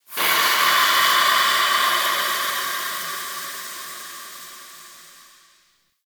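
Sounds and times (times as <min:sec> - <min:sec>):
steam blast: 0:00.0 - 0:05.8.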